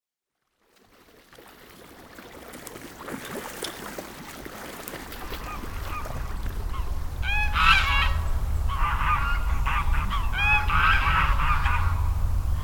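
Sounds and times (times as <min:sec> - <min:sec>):
goose honking: 0:05.3 - 0:12.1
steady low rumble: 0:05.7 - 0:12.6.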